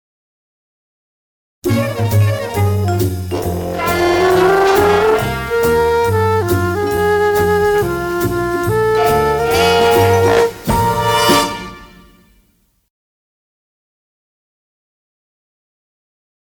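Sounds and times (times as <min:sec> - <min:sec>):
jazzy flute: 0:01.6 - 0:12.4.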